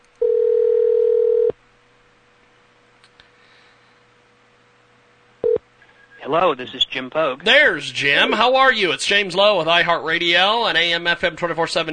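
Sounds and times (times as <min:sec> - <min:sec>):
electronic ringback tone of an outgoing phone call: 0:00.2 - 0:01.5
speech: 0:06.3 - 0:11.9.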